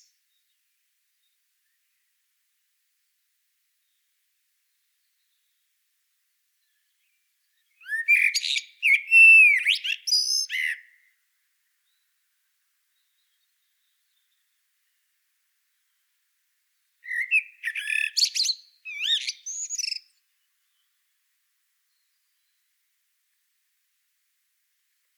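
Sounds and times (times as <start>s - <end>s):
common blackbird Turdus merula twittering with squeaky and fluted notes: 7.8s - 11.0s, 17.0s - 20.1s.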